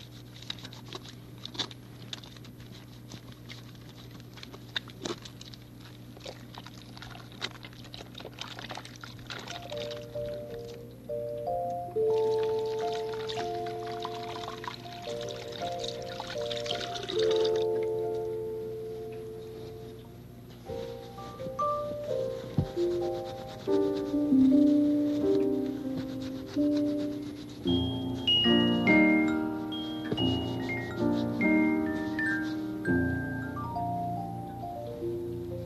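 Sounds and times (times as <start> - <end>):
hands rubbed with soap under running water: 0.0 - 10.8, 12.0 - 18.0, 20.6 - 34.3
water running and splashing: 4.7 - 10.2, 12.3 - 17.6
simple melodic tune: 9.6 - 27.0, 27.6 - 35.6.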